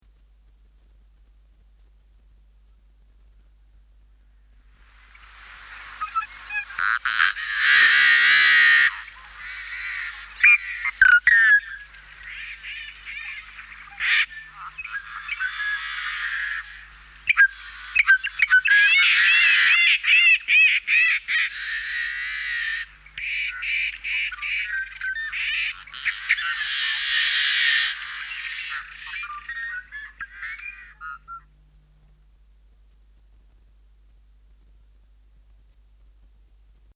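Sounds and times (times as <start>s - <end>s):
songbirds singing: 4.2s - 33.4s
yellow-headed blackbird calling: 4.3s - 31.7s.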